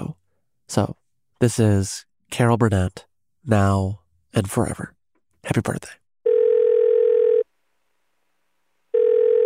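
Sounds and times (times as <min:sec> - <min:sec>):
speech: 0:00.7 - 0:06.0
electronic telephone line ringing tone while a call connects: 0:06.2 - 0:07.5, 0:08.9 - 0:09.4.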